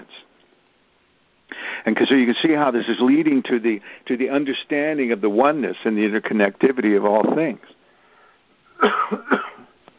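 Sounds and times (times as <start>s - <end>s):
speech: 1.8s - 7.8s, 8.8s - 9.5s
man giving harsh throaty coughs: 8.8s - 9.7s.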